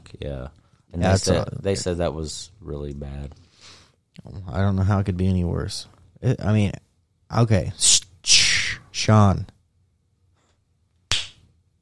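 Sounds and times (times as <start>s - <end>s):
speech: 0.1s - 3.4s, 4.2s - 8.4s, 9.0s - 9.5s
hand slapping a face: 11.1s - 11.4s.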